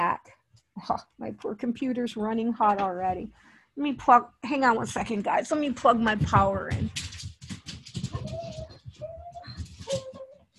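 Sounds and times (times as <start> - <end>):
speech: 0.2 - 7.0
restless shuffling of dogs: 5.8 - 10.5
dogs panting: 7.8 - 10.3
dogs whining excitedly, expecting to go out: 8.0 - 10.5.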